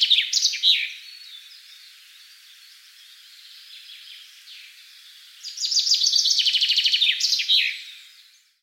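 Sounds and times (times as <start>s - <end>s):
Common chaffinch Fringilla coelebs song with terminal flourish: 0.0s - 8.6s.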